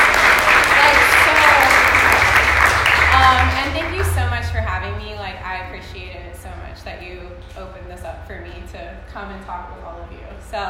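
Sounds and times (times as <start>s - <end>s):
crowd applauding loudly: 0.0s - 4.7s
low rumble: 1.2s - 9.2s
speech: 9.1s - 10.6s.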